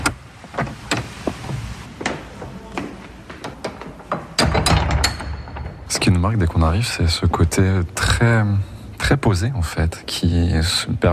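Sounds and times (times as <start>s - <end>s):
large wooden abbey door creaking open: 0.0s - 6.6s
large wooden abbey door unlatched with clicks and knocks: 3.4s - 6.2s
speech: 6.0s - 11.1s.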